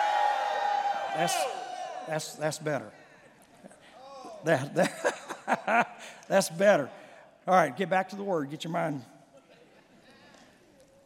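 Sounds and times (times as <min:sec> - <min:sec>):
high whoops from the crowd: 0:00.0 - 0:02.1
crowd shouting and cheering: 0:00.0 - 0:02.6
speech: 0:01.2 - 0:03.0, 0:04.4 - 0:09.1
laughter: 0:04.5 - 0:06.5, 0:09.3 - 0:10.4.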